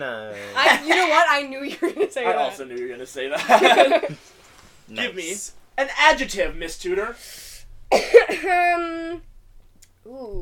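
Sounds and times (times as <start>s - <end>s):
speech: 0.0s - 4.3s, 4.9s - 9.3s, 10.0s - 10.4s
laughter: 3.3s - 4.2s
person coughing: 7.9s - 8.7s.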